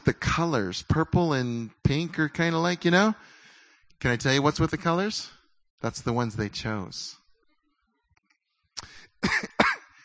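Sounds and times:
speech: 0.1s - 3.4s, 4.0s - 7.2s, 8.8s - 9.6s
short harsh coughs: 8.8s - 10.0s.

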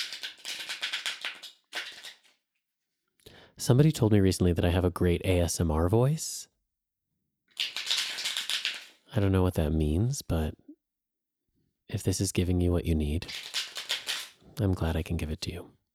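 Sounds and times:
deck of playing cards being riffle-shuffled: 0.0s - 2.4s, 7.6s - 9.0s, 13.2s - 14.4s
speech: 3.6s - 6.5s, 9.2s - 10.7s, 11.9s - 13.5s, 14.6s - 15.8s.

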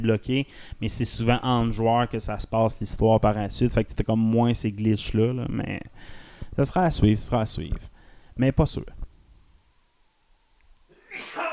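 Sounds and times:
speech: 0.0s - 9.0s
person sneezing: 10.9s - 11.5s.

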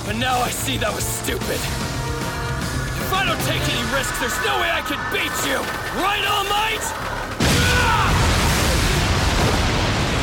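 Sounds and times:
speech: 0.1s - 1.9s, 3.1s - 7.1s
huge explosion blast from a superpowered attack in an animated fight: 7.1s - 10.2s.

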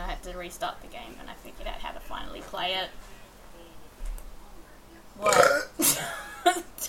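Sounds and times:
speech: 0.3s - 3.2s, 5.2s - 6.8s
raspy guttural belch: 5.2s - 5.8s.

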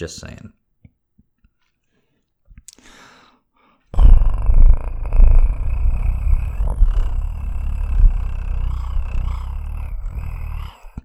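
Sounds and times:
person imitating a cat purr with low rumbling throat vibration: 4.0s - 11.0s.

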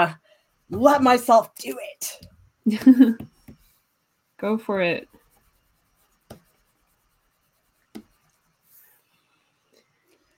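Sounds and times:
speech: 0.0s - 3.3s, 4.4s - 5.2s
brush pen strokes on watercolor paper: 3.5s - 9.2s.

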